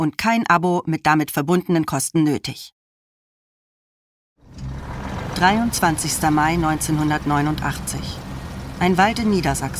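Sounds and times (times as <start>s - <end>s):
speech: 0.0s - 2.8s, 5.4s - 8.2s, 8.8s - 9.7s
car engine rumbling as the car stops near a forest clearing in Lower Saxony: 4.4s - 9.7s.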